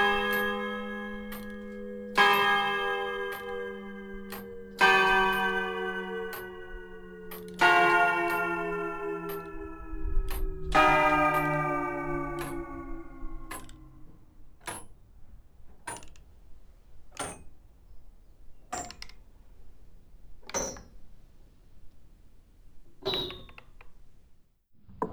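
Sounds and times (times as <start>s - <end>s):
village church tower clock bells tolling: 0.0s - 14.2s.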